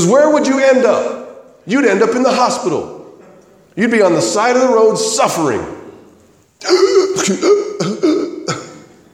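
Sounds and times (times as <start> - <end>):
speech: 0.0 - 3.0, 3.8 - 5.8, 6.6 - 8.6
person clearing throat: 6.6 - 9.0
person coughing harshly: 6.6 - 9.0.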